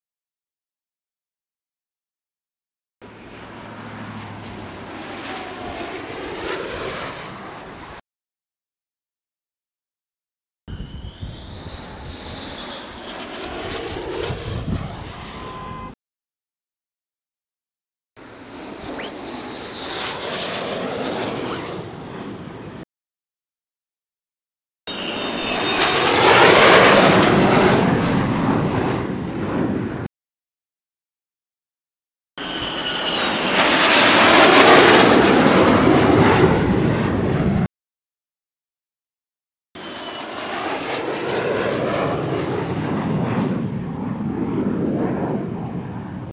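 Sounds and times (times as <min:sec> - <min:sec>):
F-35 jet landing at Leeuwarden: 0:03.0 - 0:08.0, 0:10.7 - 0:16.0, 0:18.2 - 0:22.9, 0:24.9 - 0:30.1, 0:32.4 - 0:37.7, 0:39.8 - 0:46.3.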